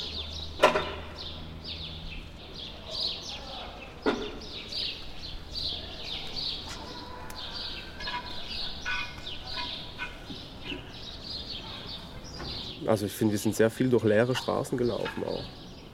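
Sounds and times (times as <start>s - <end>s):
several birds chirping and singing outdoors: 0.0s - 15.9s
sharp knocks: 0.6s - 1.2s
speech: 12.9s - 15.6s.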